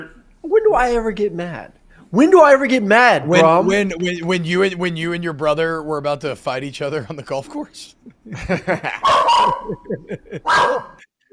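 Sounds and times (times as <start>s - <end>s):
speech: 0.0s - 11.1s
laughter: 8.0s - 10.8s
dog barking excitedly at construction work: 9.0s - 11.0s.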